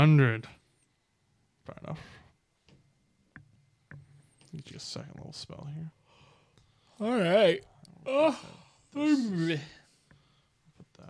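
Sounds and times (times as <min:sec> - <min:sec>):
speech: 0:00.0 - 0:00.6, 0:01.7 - 0:02.2, 0:04.5 - 0:06.0, 0:07.0 - 0:09.8
person yawning aloud: 0:08.0 - 0:09.7.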